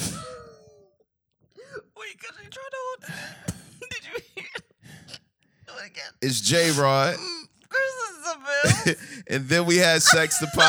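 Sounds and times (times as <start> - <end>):
speech: 2.1 - 3.5, 5.8 - 7.3, 8.8 - 10.6
person coughing roughly with a throaty hack: 3.2 - 4.8
laughter: 6.2 - 10.6.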